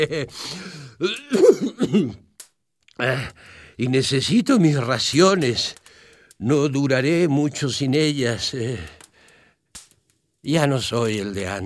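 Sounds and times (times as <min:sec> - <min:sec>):
speech: 0:00.0 - 0:02.2, 0:03.0 - 0:05.8, 0:06.4 - 0:09.0, 0:10.4 - 0:11.6
person coughing hoarsely: 0:00.2 - 0:02.3
throat clearing: 0:01.0 - 0:02.2.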